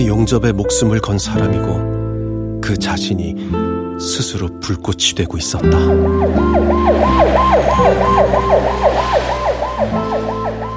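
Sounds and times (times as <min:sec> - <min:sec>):
speech: 0:00.0 - 0:01.9, 0:02.6 - 0:10.2
ambulance siren wailing in rising-and-falling sweeps: 0:05.6 - 0:10.7.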